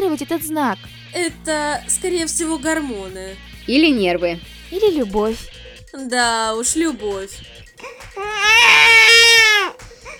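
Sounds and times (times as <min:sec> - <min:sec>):
speech: 0:00.1 - 0:09.8
baby whimpering: 0:07.7 - 0:10.1
baby wailing after waking up: 0:07.8 - 0:09.8.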